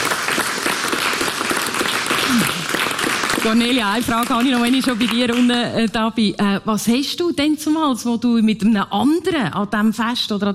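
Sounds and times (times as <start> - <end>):
audience applauding: 0.0 - 5.8
speech: 3.4 - 10.5.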